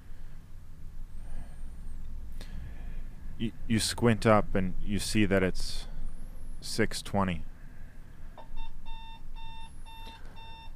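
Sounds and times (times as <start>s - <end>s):
low rumble: 0.0s - 10.7s
speech: 3.4s - 5.9s, 6.6s - 7.5s
alarm clock beeping: 8.6s - 10.7s.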